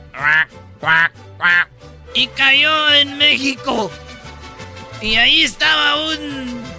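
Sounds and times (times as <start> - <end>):
duck quacking: 0.1 - 1.8
speech: 0.3 - 4.0, 5.0 - 6.7.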